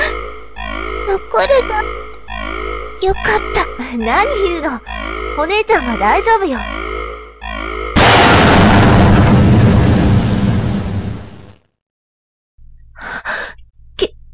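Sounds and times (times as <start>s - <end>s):
brief rising tone: 0.0s - 10.7s
speech: 1.1s - 6.8s
research institute laboratory building explosion: 8.0s - 11.7s.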